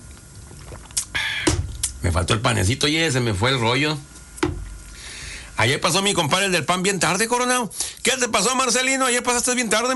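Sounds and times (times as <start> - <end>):
sipping coffee from a cup: 0.4 - 1.9
speech: 2.0 - 4.1, 5.6 - 9.9.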